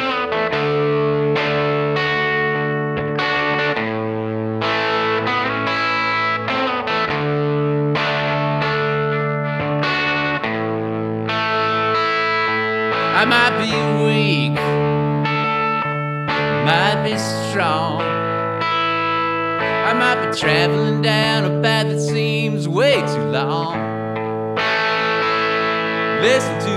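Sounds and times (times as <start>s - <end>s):
loud gritty distorted electric guitar playing sustained chords: 0.0s - 26.7s
full band playing: 11.5s - 22.0s, 24.5s - 26.7s
speech: 13.2s - 14.8s, 16.7s - 18.1s, 20.0s - 23.8s, 26.2s - 26.7s.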